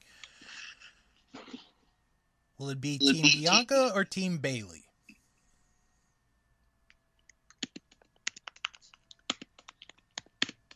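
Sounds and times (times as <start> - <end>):
speech: 2.6 - 4.8
typing on a computer keyboard: 7.5 - 10.7.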